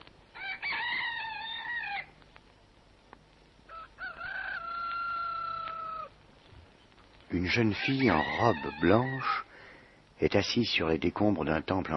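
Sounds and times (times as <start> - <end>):
faint hiss: 0.0 - 11.9
rooster crowing: 0.3 - 2.2, 3.7 - 6.2, 7.6 - 9.4
speech: 7.3 - 9.5, 10.2 - 11.9.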